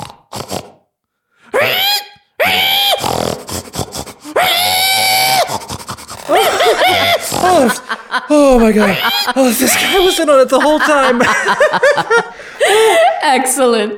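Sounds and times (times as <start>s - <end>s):
person imitating a pig squealing: 1.5s - 7.8s, 8.6s - 10.2s
person panting: 3.4s - 4.4s, 5.4s - 8.1s, 12.2s - 13.2s
laughter: 6.2s - 13.4s
speech: 7.4s - 13.9s.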